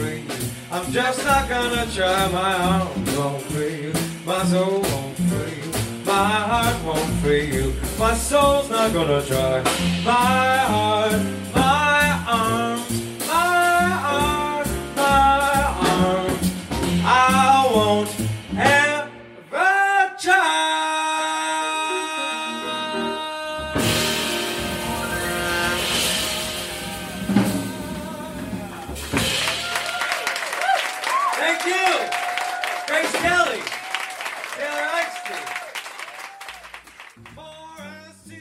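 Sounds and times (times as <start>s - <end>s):
jazz singer with band accompaniment: 0.0s - 35.7s, 37.1s - 38.3s
speech: 0.7s - 11.4s
audience applause and cheering: 24.7s - 37.9s.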